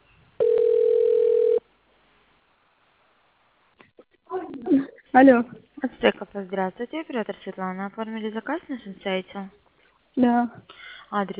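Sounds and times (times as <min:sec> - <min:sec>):
telephone ringing tone while placing a call: 0:00.4 - 0:01.6
speech: 0:05.2 - 0:09.6, 0:10.2 - 0:11.3.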